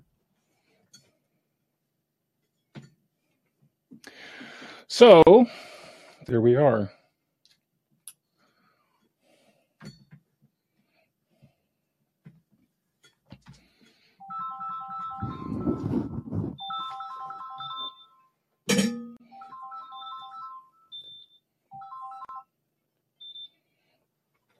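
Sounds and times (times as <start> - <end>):
speech: 5.0 - 5.7, 6.3 - 7.0
phone ringtone electronic melody from incoming call: 14.2 - 18.3, 19.2 - 22.5.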